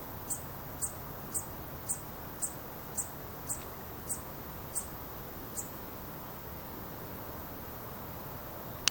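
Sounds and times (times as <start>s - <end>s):
low steady hiss: 0.0s - 8.8s
insect calls at night in crisp high pulses: 0.2s - 5.8s.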